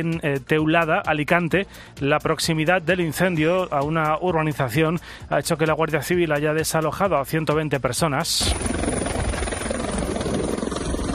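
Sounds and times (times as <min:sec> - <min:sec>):
speech: 0:00.0 - 0:08.9
firefighting helicopter flying overhead: 0:08.4 - 0:11.1.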